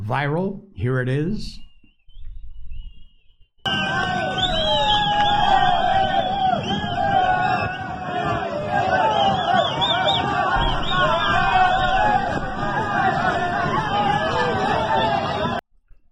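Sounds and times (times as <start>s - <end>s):
speech: 0.1s - 1.7s
crowd cheering and yelling atop a cargo train: 3.7s - 15.6s.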